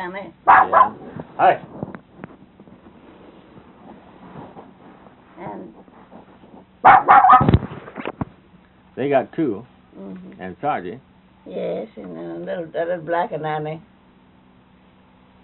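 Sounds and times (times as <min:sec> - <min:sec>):
speech: 0:00.0 - 0:01.7, 0:09.0 - 0:09.8, 0:10.4 - 0:13.9
dog barking: 0:00.4 - 0:01.1, 0:06.8 - 0:07.6.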